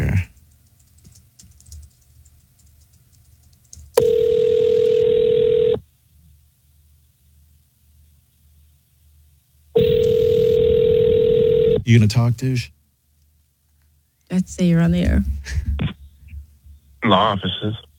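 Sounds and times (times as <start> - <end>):
faint low noise: 0.0 - 17.9
telephone line tone on an outgoing call: 4.0 - 5.8, 9.8 - 11.8
speech: 11.9 - 12.8, 14.4 - 15.9, 17.1 - 17.9.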